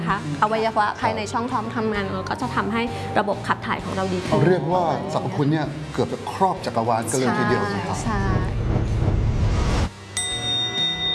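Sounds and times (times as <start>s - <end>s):
speech: 0.1s - 9.0s
bell ringing: 10.1s - 11.1s.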